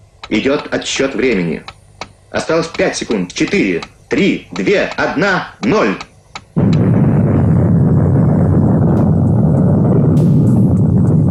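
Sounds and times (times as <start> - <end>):
speech: 0.3 - 6.8
deep roaring rumble: 6.6 - 11.3
underground nuclear explosion blast: 6.6 - 11.3.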